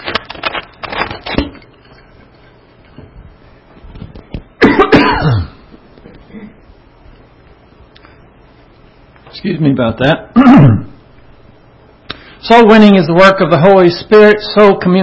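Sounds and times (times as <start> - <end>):
person clearing throat: 4.6 - 5.6, 6.3 - 6.6, 10.4 - 11.0
person coughing: 4.6 - 5.6, 6.3 - 6.6, 10.4 - 11.0
speech: 9.4 - 10.8, 12.5 - 15.0.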